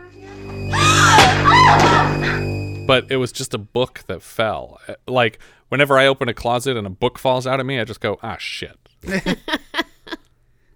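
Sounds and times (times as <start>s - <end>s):
woman in a movie letting out a startled scream: 0.4s - 2.5s
speech: 2.9s - 9.6s.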